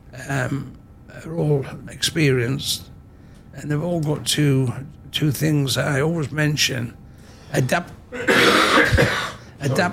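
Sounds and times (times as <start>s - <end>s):
speech: 0.1s - 2.9s, 3.6s - 9.9s
man coughing: 8.1s - 9.5s
man's rough throat-clearing rasp: 8.2s - 9.5s.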